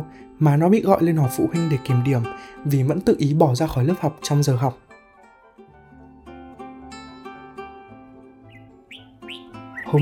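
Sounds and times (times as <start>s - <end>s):
speech: 0.0s - 4.8s
sustained musical tones: 4.8s - 10.0s
red-whiskered bulbuls singing bright rising chirps: 7.9s - 10.0s.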